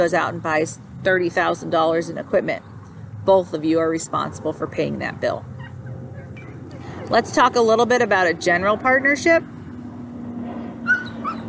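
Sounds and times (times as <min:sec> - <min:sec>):
speech: 0:00.0 - 0:05.5, 0:07.1 - 0:09.6
steady low hum: 0:00.0 - 0:11.4
dog whining: 0:05.6 - 0:06.6, 0:10.8 - 0:11.4.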